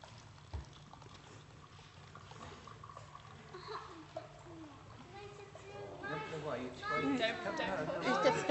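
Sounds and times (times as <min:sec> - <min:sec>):
water pouring into a cup: 0:00.0 - 0:05.1
speech: 0:06.4 - 0:08.4.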